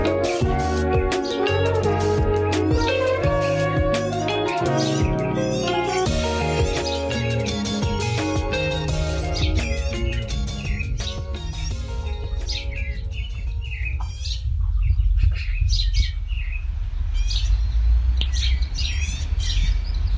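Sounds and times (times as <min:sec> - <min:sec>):
birds chirping and tweeting in a park: 0:00.0 - 0:20.1
low rumble: 0:11.5 - 0:20.1.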